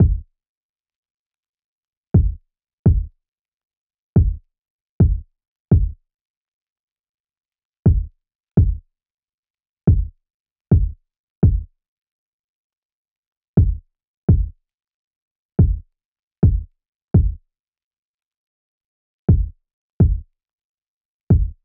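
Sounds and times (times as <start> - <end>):
kick drum in C minor: 0.0 - 0.2, 2.2 - 3.1, 4.2 - 4.4, 5.0 - 6.0, 7.9 - 8.8, 9.9 - 10.1, 10.7 - 11.7, 13.6 - 14.5, 15.6 - 15.8, 16.4 - 17.4, 19.3 - 20.2, 21.3 - 21.6.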